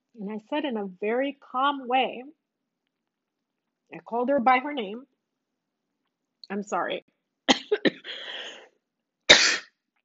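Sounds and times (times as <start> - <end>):
speech: 0.2 - 2.4, 3.9 - 5.1, 6.5 - 8.2
person coughing: 7.5 - 8.6, 9.3 - 9.7
raspy wheezing: 8.0 - 8.7
forceful explosive sneeze: 9.3 - 9.7.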